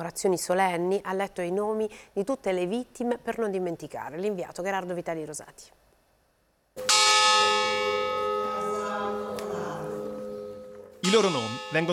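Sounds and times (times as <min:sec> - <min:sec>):
speech: 0:00.0 - 0:05.8, 0:11.0 - 0:11.9
large mine memorial bell tolling: 0:06.8 - 0:11.9.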